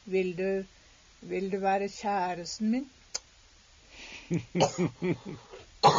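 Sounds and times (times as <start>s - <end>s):
speech: 0.1s - 3.0s, 4.3s - 5.9s
person coughing after choking on something: 4.6s - 5.9s.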